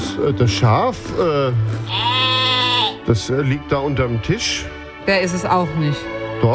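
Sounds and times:
speech: 0.2 - 2.2, 3.1 - 6.5
sheep bleating: 1.8 - 3.1.

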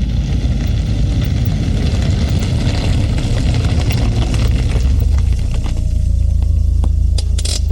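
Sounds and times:
car engines rumbling as cars drive up to an aircraft at night: 0.0 - 7.6.

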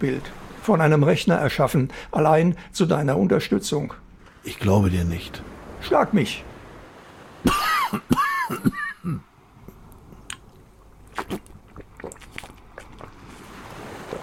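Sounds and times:
speech: 0.0 - 6.5, 7.4 - 9.3
loud coughs: 7.4 - 9.3.

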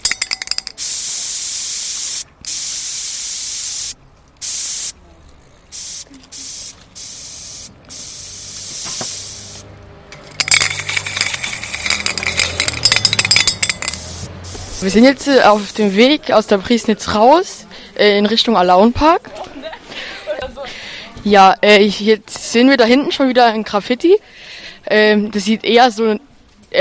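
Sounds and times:
aerosol spray paint can hissing over a stencil: 0.8 - 5.0, 5.7 - 9.7, 10.4 - 16.1
clattering handling noises: 10.1 - 14.3
speech: 14.9 - 19.3, 21.2 - 24.3, 24.9 - 26.7.

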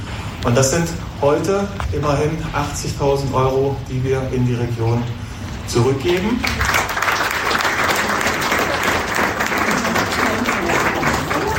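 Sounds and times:
speech: 0.4 - 6.7
audience applause: 6.2 - 11.5.

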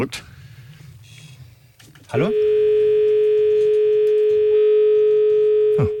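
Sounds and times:
speech: 0.0 - 0.3, 2.1 - 2.6
telephone line tone after caller hung up: 2.2 - 5.9.

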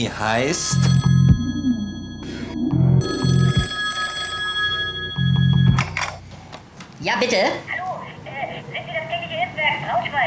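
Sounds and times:
speech: 0.0 - 1.1, 7.0 - 7.8
telephone ringing with a trilling bell: 0.0 - 6.5.

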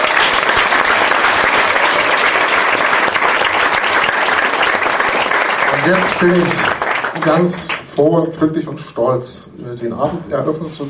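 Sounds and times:
audience applause: 0.0 - 7.9
speech: 5.9 - 10.8.

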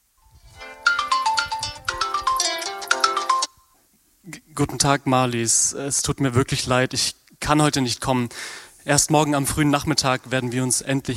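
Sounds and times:
smartphone ringing with a bright melodic ringtone: 0.5 - 3.6
speech: 4.6 - 11.1.

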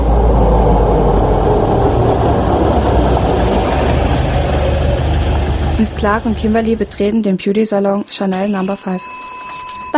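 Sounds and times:
car engine rumbling while driving: 0.0 - 7.3
road drone from a driving car: 0.0 - 7.3
speech: 5.9 - 9.2.

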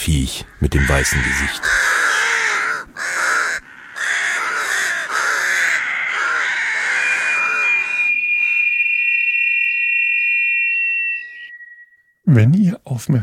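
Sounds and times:
speech: 0.1 - 1.9, 12.3 - 13.2
noisy group of rooks cawing: 0.5 - 11.5
thin steady high whistle: 6.7 - 12.3.

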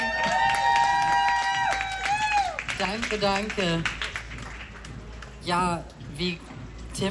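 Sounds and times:
audience clapping: 0.0 - 5.6
speech: 2.8 - 4.0, 5.5 - 7.0.

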